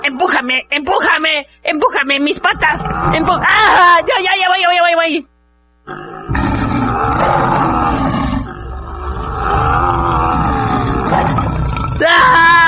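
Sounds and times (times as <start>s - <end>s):
speech: 0.2s - 5.3s
tiger roaring: 2.6s - 4.0s, 5.9s - 12.6s.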